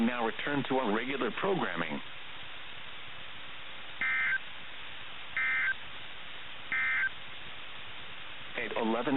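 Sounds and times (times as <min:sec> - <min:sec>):
speech: 0:00.0 - 0:02.2, 0:08.8 - 0:09.1
faint radio hiss: 0:00.0 - 0:09.1
NOAA All Hazards Radio alert data tones: 0:04.0 - 0:04.4, 0:05.4 - 0:05.8, 0:06.7 - 0:07.2.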